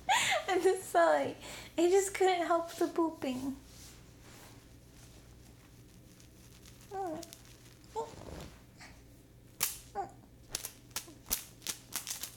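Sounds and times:
speech: 0.6s - 3.6s
sharp crisp slaps: 9.6s - 12.3s.

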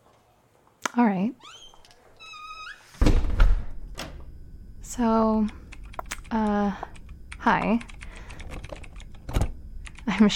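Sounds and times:
speech: 1.0s - 1.6s, 4.9s - 5.6s, 6.3s - 8.0s, 10.1s - 10.3s
door hinge squeak: 1.4s - 2.9s
door shutting thunk: 3.0s - 4.2s.

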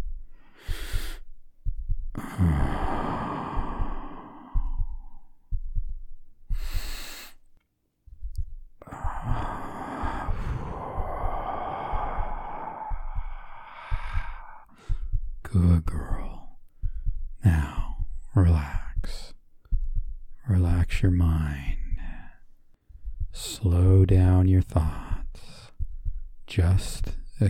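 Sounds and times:
soft low thuds: 0.0s - 27.4s
slow deliberate breathing out: 0.2s - 1.3s, 2.1s - 5.6s, 6.5s - 7.5s, 8.8s - 15.2s
speech: 2.4s - 2.8s.

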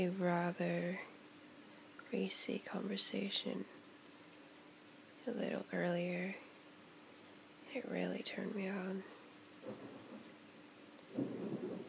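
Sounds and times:
speech: 0.0s - 1.1s, 2.1s - 3.8s, 5.2s - 6.5s, 7.7s - 10.3s
steady hiss of falling rain during a storm: 0.0s - 11.8s
thunder rumbling during a rainstorm with lightning: 9.6s - 10.5s, 11.1s - 11.8s.

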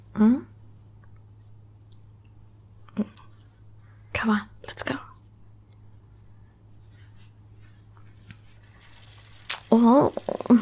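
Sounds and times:
speech: 0.2s - 0.5s, 4.3s - 4.5s
cold shower water running: 8.6s - 10.5s.

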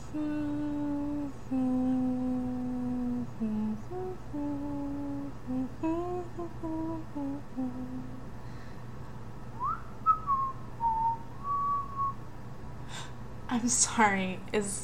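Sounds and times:
faint hum: 0.0s - 14.8s
speech: 0.1s - 0.4s, 13.6s - 14.8s
person whistling a tune: 9.6s - 12.2s.

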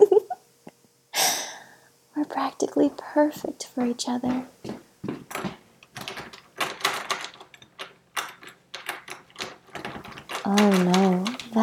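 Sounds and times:
speech: 2.4s - 4.6s, 10.5s - 11.6s
locked door rattling and jiggling: 5.2s - 11.6s.

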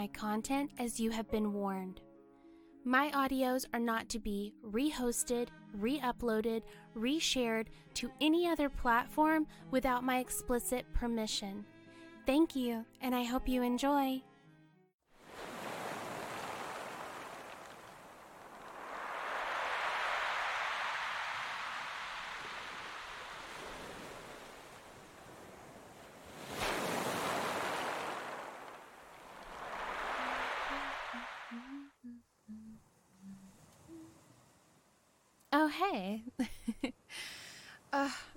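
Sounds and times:
speech: 0.0s - 2.1s, 2.8s - 14.3s, 35.6s - 36.5s, 37.9s - 38.3s
ocean waves breaking on a beach: 15.2s - 31.9s.

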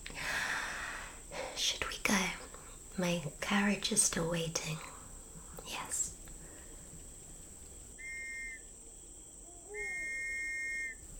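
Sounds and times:
faint constant hiss: 0.0s - 11.1s
speech: 3.0s - 4.9s
high-pitched whistle blasts outside: 8.0s - 8.7s, 9.7s - 11.0s.

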